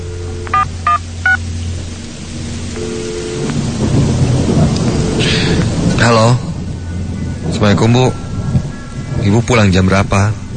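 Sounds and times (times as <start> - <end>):
touch-tone beeps of a telephone keypad being dialed: 0.0 - 1.4, 2.8 - 3.5
heavy rain: 0.0 - 10.5
rumbling thunder: 0.0 - 10.5
speech: 7.6 - 8.2, 9.2 - 10.4.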